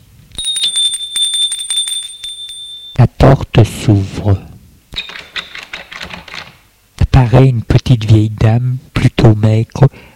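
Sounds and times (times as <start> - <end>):
doorbell ringing at a front door: 0.4 - 3.1
speech: 3.6 - 4.5, 7.2 - 10.1.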